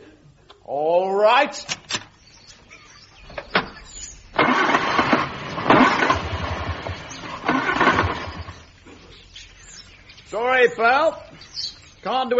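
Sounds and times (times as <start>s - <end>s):
speech: 0.7s - 1.8s, 10.6s - 11.2s, 12.1s - 12.3s
clicks: 1.6s - 2.6s
car engine cranking without catching: 3.2s - 8.8s.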